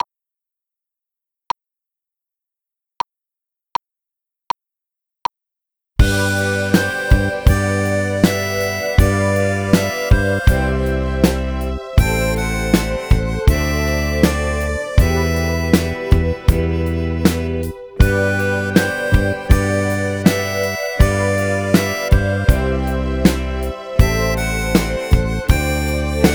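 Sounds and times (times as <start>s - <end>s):
keyboard playing: 6.0s - 26.3s.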